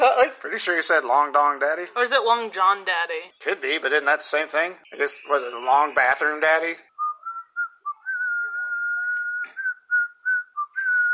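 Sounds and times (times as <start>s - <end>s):
speech: 0.2s - 6.9s
person whistling the tune of a song: 7.0s - 11.1s.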